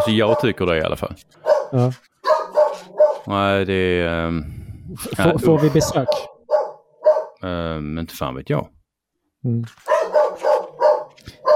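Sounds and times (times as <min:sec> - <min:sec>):
dog barking: 0:00.0 - 0:00.6, 0:01.4 - 0:03.3, 0:05.4 - 0:07.4, 0:09.8 - 0:11.5
speech: 0:00.0 - 0:02.1, 0:03.2 - 0:06.3, 0:07.4 - 0:08.8, 0:09.4 - 0:09.9.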